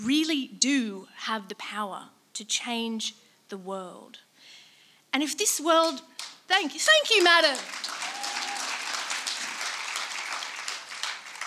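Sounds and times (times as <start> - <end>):
speech: 0.0 - 8.0
crowd applauding: 7.0 - 11.4.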